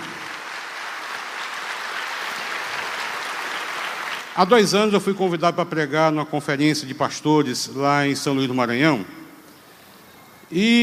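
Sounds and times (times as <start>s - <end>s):
audience applauding: 0.0s - 4.8s
speech: 4.4s - 9.2s, 10.5s - 10.8s.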